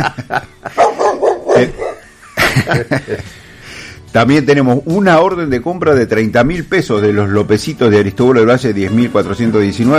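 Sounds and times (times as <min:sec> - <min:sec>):
speech: 0:00.0 - 0:00.8, 0:01.6 - 0:01.8, 0:02.6 - 0:03.4, 0:04.1 - 0:09.9
laughter: 0:00.0 - 0:01.0, 0:02.0 - 0:03.3
dog barking: 0:00.8 - 0:02.0.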